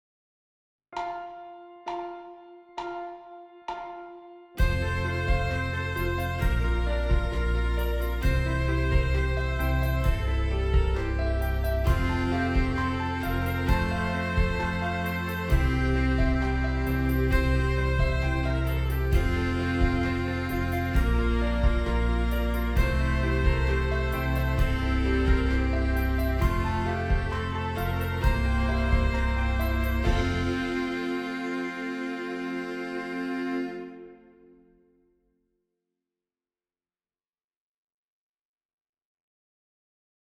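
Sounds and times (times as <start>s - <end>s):
horns playing an exercise in fifths: 4.6s - 34.6s.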